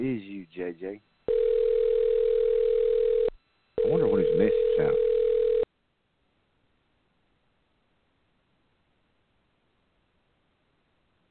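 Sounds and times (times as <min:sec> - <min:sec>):
speech: 0:00.0 - 0:01.1, 0:03.9 - 0:05.1
telephone line tone during a call: 0:01.3 - 0:05.7.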